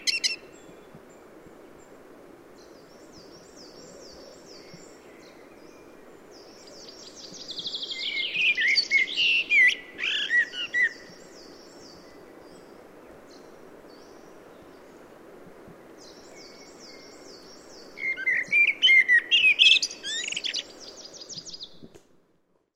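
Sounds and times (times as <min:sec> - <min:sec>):
common blackbird singing fluty phrases with squeaky twitters: 0:00.0 - 0:00.4, 0:06.7 - 0:11.5, 0:18.0 - 0:21.8.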